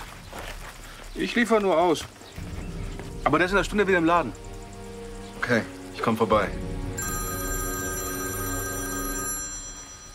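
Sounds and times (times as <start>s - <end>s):
speech: 1.2s - 2.4s, 3.2s - 4.5s, 5.5s - 6.7s
telephone ringing with bright bell-like trill: 7.0s - 10.1s.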